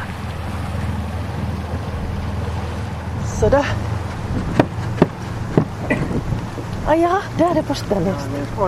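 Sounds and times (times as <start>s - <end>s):
water sounds: 0.0s - 8.6s
water taxi boat engine droning as it leaves a jetty: 0.0s - 8.6s
wind buffeting the microphone: 0.0s - 8.6s
speech: 3.4s - 4.7s, 6.9s - 8.6s.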